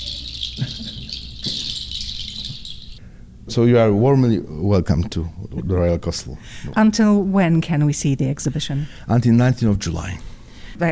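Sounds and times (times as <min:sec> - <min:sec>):
chorus of high-pitched bird chirps and trills: 0:00.0 - 0:03.0
speech: 0:03.5 - 0:10.9.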